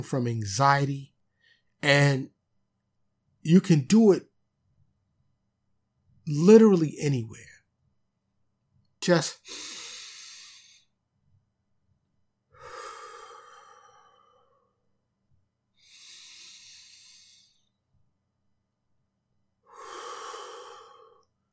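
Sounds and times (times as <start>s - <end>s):
speech: 0.0s - 1.1s, 1.8s - 2.4s, 3.4s - 4.3s, 6.3s - 7.5s, 9.0s - 9.8s
deep slow breathing in through nose and out through mouth: 12.5s - 14.9s, 15.8s - 17.8s, 19.6s - 21.5s.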